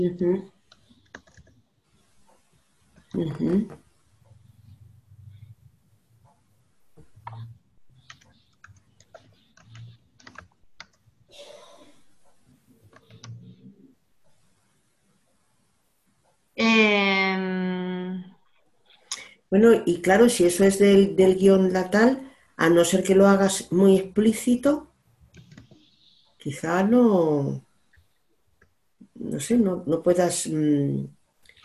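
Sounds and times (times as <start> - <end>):
speech: 0.0 - 0.6, 3.1 - 3.8, 16.6 - 18.2, 19.5 - 24.9, 26.4 - 27.6, 29.2 - 31.6
faint typing on a computer keyboard: 0.7 - 1.6, 7.2 - 11.0, 12.8 - 13.4.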